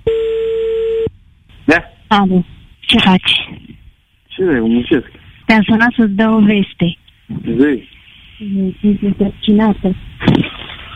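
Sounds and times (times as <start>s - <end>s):
telephone ringing tone over a thin phone line: 0.0s - 1.1s
speech: 1.7s - 3.4s, 4.4s - 10.5s.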